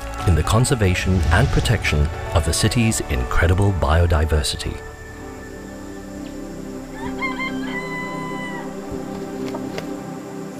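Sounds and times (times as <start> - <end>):
speech: 0.2 - 4.9
jungle fowl crowing and clucking: 6.9 - 9.7.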